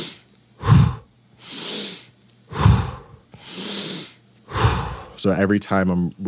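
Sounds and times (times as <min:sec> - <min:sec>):
deep breathing in and out: 0:00.0 - 0:05.2
speech: 0:05.2 - 0:06.2.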